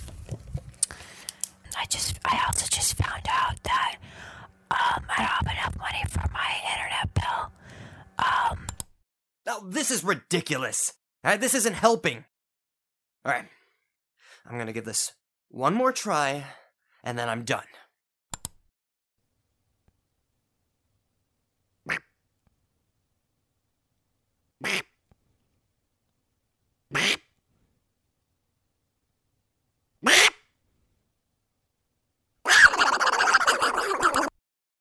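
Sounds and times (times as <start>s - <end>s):
speech: 1.8s - 7.6s, 8.2s - 8.7s, 9.5s - 12.3s, 13.2s - 13.6s, 14.4s - 17.8s
duck quacking: 24.6s - 24.9s, 26.9s - 27.2s, 30.0s - 30.4s, 32.5s - 34.3s.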